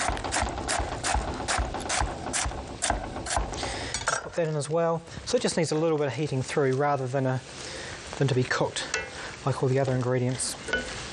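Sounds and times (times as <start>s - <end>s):
knife slicing crisp purple cabbage: 0.0s - 3.6s
speech: 4.4s - 7.6s, 8.2s - 10.8s.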